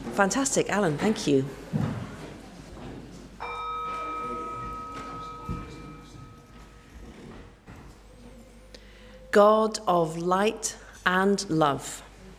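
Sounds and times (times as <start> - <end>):
low hum of room noise: 0.0 - 12.3
speech: 0.2 - 2.0, 9.4 - 12.1
gong bell struck with a long shimmering tone: 3.4 - 7.7.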